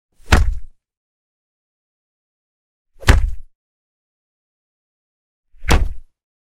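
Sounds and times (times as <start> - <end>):
human body impacts: 0.3 - 0.7, 3.0 - 3.5, 5.6 - 6.1.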